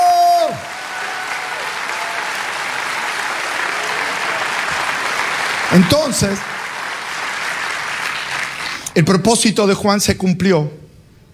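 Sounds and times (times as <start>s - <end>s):
large gathering applauding: 0.0s - 8.9s
speech: 5.7s - 6.5s, 9.0s - 10.8s.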